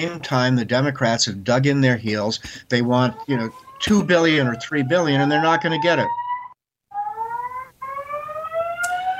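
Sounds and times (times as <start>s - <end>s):
speech: 0.0s - 6.2s
fire alarm blaring a steady electronic tone: 2.9s - 9.1s.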